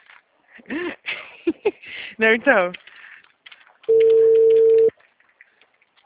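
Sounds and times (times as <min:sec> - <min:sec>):
speech: 0:00.6 - 0:01.0, 0:01.6 - 0:02.9
telephone busy-signal beep on a call to a client: 0:03.9 - 0:04.9.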